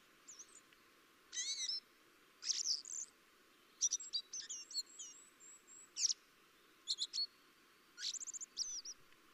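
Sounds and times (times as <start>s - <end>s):
common blackbird Turdus merula calling: 1.3s - 1.8s, 2.4s - 3.1s, 3.8s - 6.2s, 8.0s - 9.0s.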